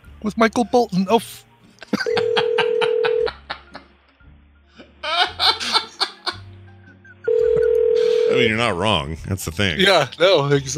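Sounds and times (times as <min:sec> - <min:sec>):
speech: 0:00.2 - 0:02.2, 0:08.4 - 0:10.7
people laughing: 0:01.8 - 0:04.0, 0:04.8 - 0:06.5
steady dial tone: 0:07.3 - 0:08.4.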